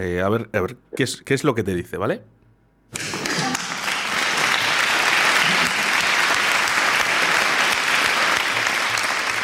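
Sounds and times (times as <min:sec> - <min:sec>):
speech: 0:00.0 - 0:03.1
large audience applause: 0:03.0 - 0:09.4.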